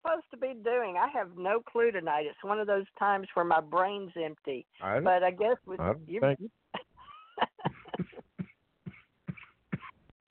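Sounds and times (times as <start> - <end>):
speech: 0.4 - 6.6
laughter: 6.8 - 8.2
sick man coughing: 7.7 - 10.0.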